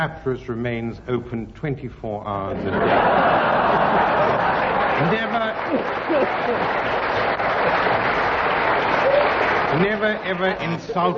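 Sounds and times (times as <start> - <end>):
speech: 0.0 - 7.0, 9.7 - 11.1
studio audience laughing: 2.5 - 11.1.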